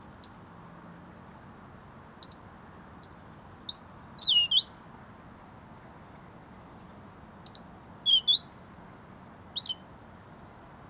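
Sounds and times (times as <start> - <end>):
European robin (Erithacus rubecula) ticking: 2.2 - 2.4, 7.5 - 8.5.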